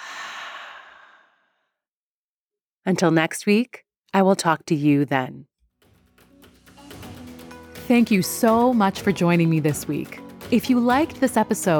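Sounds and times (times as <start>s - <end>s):
long breathy exhale after a deep breath in: 0.0s - 1.7s
speech: 2.8s - 5.5s, 7.9s - 11.7s.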